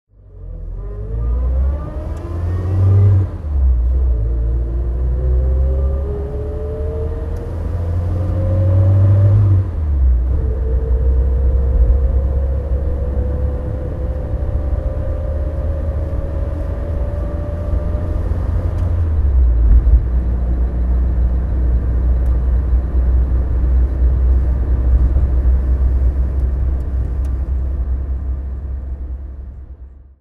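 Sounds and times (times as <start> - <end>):
Triumph Herald convertible driving: 0.2 - 30.1.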